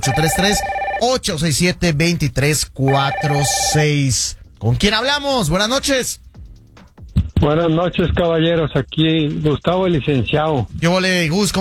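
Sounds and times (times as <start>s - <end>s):
telephone ringing with an incoming call: 0.0s - 1.1s, 2.9s - 4.0s
speech: 0.0s - 6.2s, 7.4s - 11.5s.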